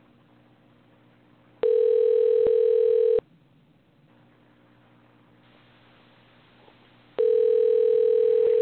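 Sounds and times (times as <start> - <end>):
phone line electronic ring tone: 1.6 - 3.2, 7.2 - 8.5.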